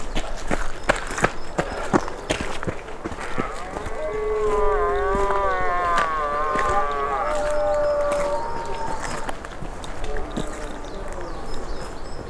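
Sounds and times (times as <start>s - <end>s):
scattered crackles and rustling: 0.0s - 12.2s
red deer stag bellowing during rut: 3.0s - 11.6s.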